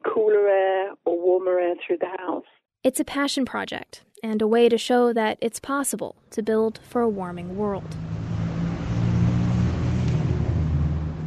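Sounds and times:
speech: 0.2 - 8.1
busy city street traffic: 6.4 - 11.2
motorcycles on a busy city street: 7.1 - 11.2.

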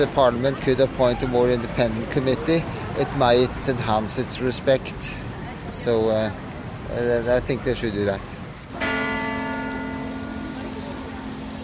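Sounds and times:
speech: 0.0 - 8.3
large city hall bell tolling: 8.8 - 11.6.

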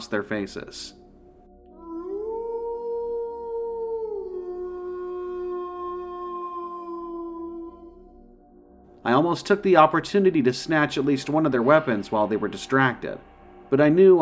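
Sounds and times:
speech: 0.0 - 1.0, 9.0 - 14.1
long gnarled animal howl: 1.7 - 8.4.

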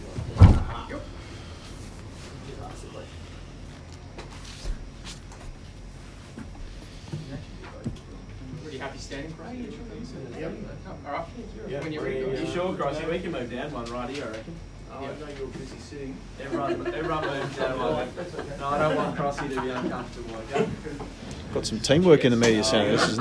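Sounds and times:
voices: 0.0 - 4.3, 6.8 - 23.1
door shutting with a heavy thud: 0.2 - 0.9
speech: 9.1 - 23.1
laughter: 16.4 - 21.2, 22.6 - 23.1.

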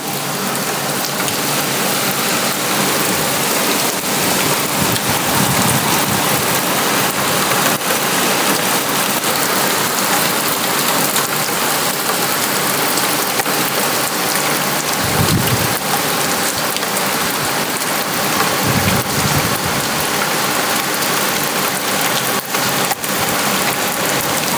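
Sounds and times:
heavy torrential rain: 0.0 - 24.5
distant thunder rumbles: 3.9 - 7.0, 15.0 - 16.2, 18.5 - 20.1.

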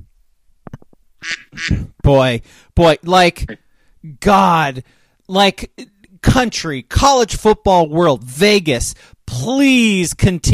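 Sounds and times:
duck quacking: 1.2 - 1.9
speech: 1.2 - 10.5.

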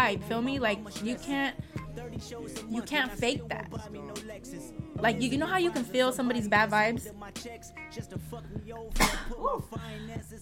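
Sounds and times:
speech: 0.1 - 10.4
single sharp loud breathy sneeze: 8.9 - 9.5.

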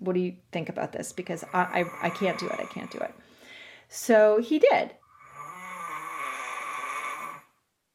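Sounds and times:
speech: 0.0 - 3.3, 3.9 - 5.0
loud rasping snore during sleep: 1.4 - 3.2, 5.1 - 7.6.

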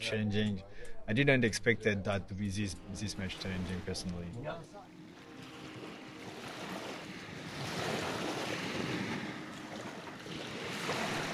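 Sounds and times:
speech: 0.0 - 4.9
surf waves on the Black Sea coast: 2.8 - 11.3.

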